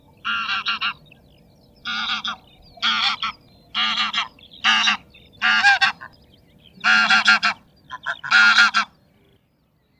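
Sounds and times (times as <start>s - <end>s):
Greylag goose honks: 0.2s - 1.0s, 1.9s - 6.1s, 6.8s - 8.9s.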